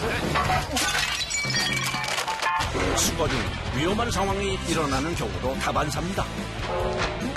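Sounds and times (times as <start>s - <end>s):
scattered debris clinking and rattling: 0.1s - 3.7s
brittle ceramic-like waste shattering on impact: 0.2s - 3.0s
speech: 2.9s - 7.2s.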